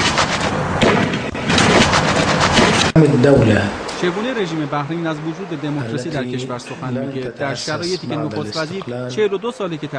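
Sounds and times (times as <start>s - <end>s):
gunfire from troops firing on people in Bahrain: 0.0s - 3.0s
dense wall of noise: 0.0s - 9.9s
speech: 3.0s - 9.9s.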